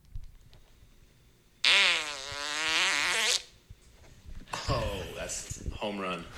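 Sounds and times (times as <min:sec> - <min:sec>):
faint noise: 0:00.0 - 0:06.3
recorded fart: 0:01.6 - 0:03.5.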